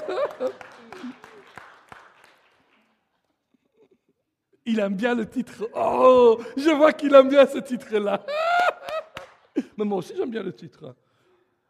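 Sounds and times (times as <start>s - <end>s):
laughter: 0.0s - 1.5s, 7.9s - 9.7s
audience applause for the director general: 0.0s - 2.9s
speech: 4.7s - 8.4s, 9.8s - 11.0s.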